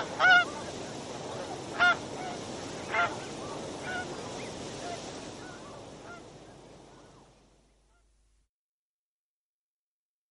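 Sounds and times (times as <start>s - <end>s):
tundra swan honking calls: 0.0s - 0.6s, 1.3s - 6.4s
constant background hiss: 0.0s - 8.5s.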